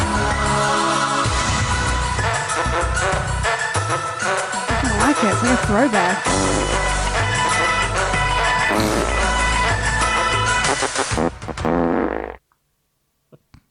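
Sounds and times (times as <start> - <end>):
loud busy theme music: 0.0 - 11.2
speech: 5.5 - 6.7
comic fart sound effects: 6.2 - 12.4.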